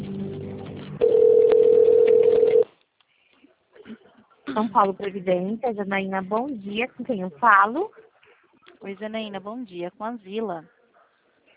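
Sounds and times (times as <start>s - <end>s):
telephone ringback tone while a call is transferred: 1.0s - 2.6s
speech: 4.6s - 8.0s, 8.8s - 10.8s.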